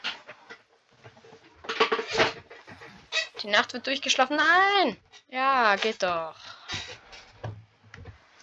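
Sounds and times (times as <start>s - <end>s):
office chair squeaking and creaking: 0.0s - 3.6s
speech: 3.4s - 6.4s.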